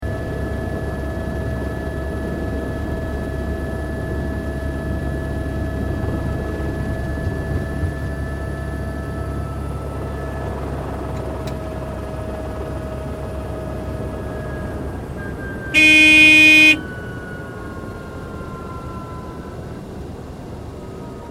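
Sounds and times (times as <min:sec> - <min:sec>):
helicopter landing: 0:00.1 - 0:21.2
helicopter warning horn: 0:15.7 - 0:17.1.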